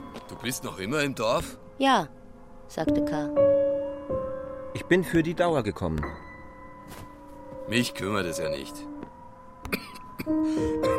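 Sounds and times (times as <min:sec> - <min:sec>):
speech: 0:00.4 - 0:04.2, 0:04.8 - 0:06.2, 0:07.7 - 0:08.9, 0:09.7 - 0:10.9
man giving sharp forceful coughs: 0:09.7 - 0:10.9.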